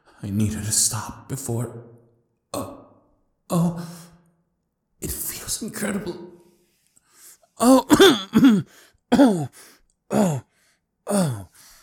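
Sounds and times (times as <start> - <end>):
speech: 0.2 - 2.0, 3.5 - 4.1, 5.0 - 6.4, 7.6 - 10.5, 11.1 - 11.5
man clearing throat from a tickle in the throat: 7.6 - 10.5.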